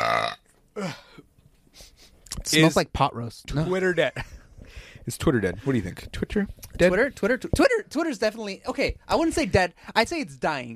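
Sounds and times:
loud burp: 0:00.0 - 0:01.0
speech: 0:02.5 - 0:04.3, 0:05.0 - 0:10.7
faint breath: 0:04.6 - 0:05.1.

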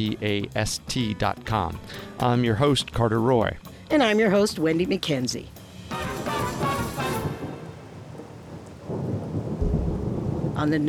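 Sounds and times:
speech: 0:00.0 - 0:05.6, 0:10.6 - 0:10.8
heavy rain in a tropical storm: 0:05.6 - 0:10.8
deep thunder rumbling in a tropical storm: 0:05.9 - 0:10.8.

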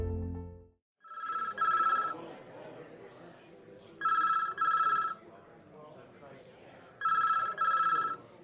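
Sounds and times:
telephone ringing in double bursts: 0:01.0 - 0:02.2, 0:04.0 - 0:05.2, 0:07.0 - 0:08.3
murmur of indistinct voices: 0:01.5 - 0:08.4.

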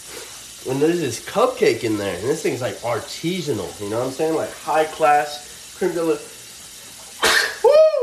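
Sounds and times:
speech: 0:00.6 - 0:06.3
single loud sneeze: 0:07.2 - 0:07.8.

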